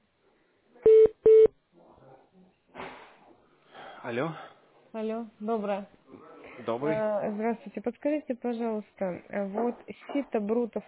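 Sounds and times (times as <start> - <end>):
telephone call-transfer beeps: 0.8 - 1.5
speech: 4.0 - 10.8.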